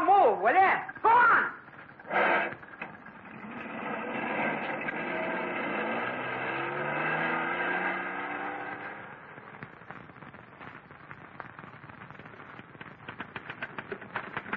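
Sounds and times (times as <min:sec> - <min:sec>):
speech: 0:00.4 - 0:01.2
car engine starting and accelerating away: 0:02.1 - 0:09.4.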